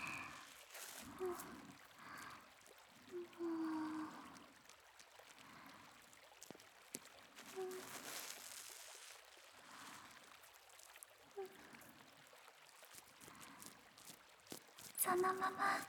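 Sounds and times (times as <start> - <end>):
soft squishy rubbing of silky foamy lather: 0.0 - 1.5, 7.4 - 10.0
speech: 1.0 - 1.8, 3.1 - 4.1, 15.2 - 15.8.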